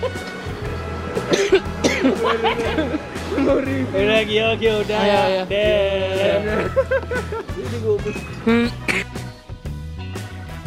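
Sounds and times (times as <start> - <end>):
people chuckling: 0.0 - 0.4, 1.3 - 4.0, 5.8 - 7.8
person giving short rough coughs: 1.3 - 2.2, 8.5 - 9.2
speech: 2.3 - 9.0.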